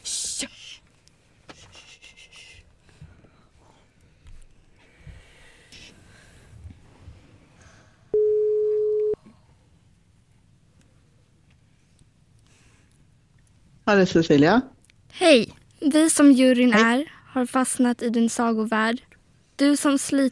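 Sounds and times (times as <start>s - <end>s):
electronic phone ringing tone: 8.2s - 9.2s
speech: 13.9s - 20.2s.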